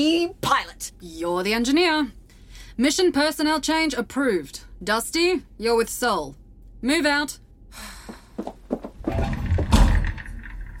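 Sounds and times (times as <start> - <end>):
speech: 0.0 - 2.2, 2.8 - 9.4
heavy bridge doors slamming shut: 9.0 - 10.5.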